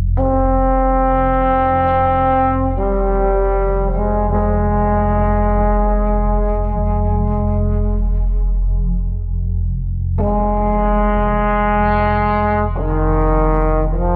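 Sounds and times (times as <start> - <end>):
lone trombone playing with dread: 0.2 - 14.1.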